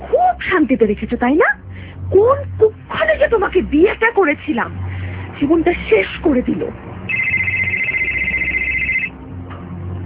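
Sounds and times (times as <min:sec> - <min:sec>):
speech: 0:00.6 - 0:04.8, 0:05.4 - 0:06.8
mobile phone electronic ringtone for an incoming call: 0:07.1 - 0:09.2.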